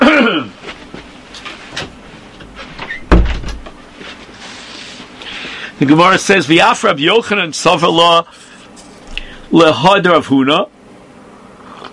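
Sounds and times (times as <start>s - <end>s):
faint clicks and shuffles: 0.6s - 2.9s, 3.6s - 5.6s
door creaking: 2.8s - 3.8s
speech: 5.8s - 8.5s, 9.5s - 10.8s.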